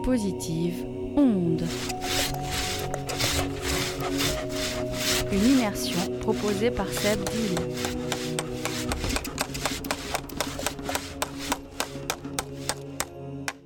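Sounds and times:
speech: 0.0 - 2.4, 5.3 - 8.1
wood being sawn in a woodworking workshop: 1.6 - 13.1.

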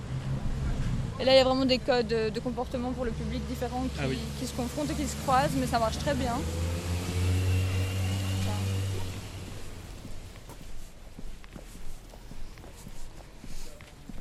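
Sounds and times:
train passing near a city railway station: 0.0 - 10.5
speech: 1.2 - 6.8.

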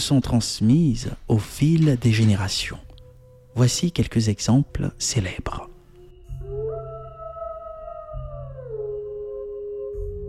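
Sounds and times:
speech: 0.0 - 2.9, 3.6 - 5.7
long mournful wolf howl: 6.3 - 10.2.

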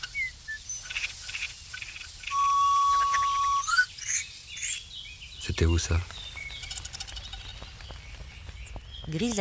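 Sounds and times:
chaffinch calling outdoors with chirps, whistle and rising note: 0.0 - 9.3
speech: 5.6 - 6.2, 9.1 - 9.3.

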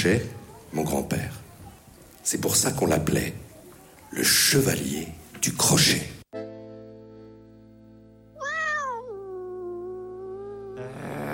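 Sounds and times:
speech: 0.0 - 1.4, 2.3 - 3.5, 4.1 - 6.1
cat meowing: 8.4 - 11.3.

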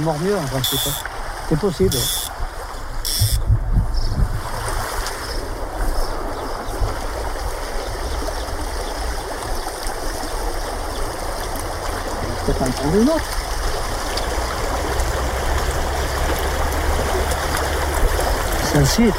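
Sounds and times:
speech: 0.0 - 2.2, 12.6 - 13.4, 18.8 - 19.1
trout fishing stream flowing: 0.0 - 19.1.

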